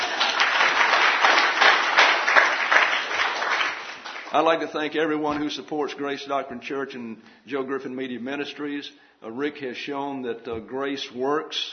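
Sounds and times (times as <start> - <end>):
audience applause: 0.0 - 4.6
speech: 4.4 - 11.7.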